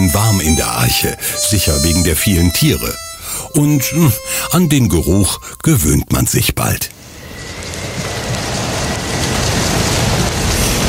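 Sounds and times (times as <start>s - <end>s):
speech: 0.5s - 7.0s
heavy rain drumming on a wooden ark: 7.4s - 10.8s.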